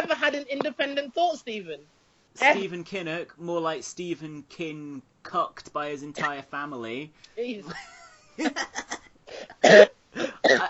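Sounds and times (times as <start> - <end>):
speech: 0.3 - 10.6
person coughing: 9.4 - 10.6.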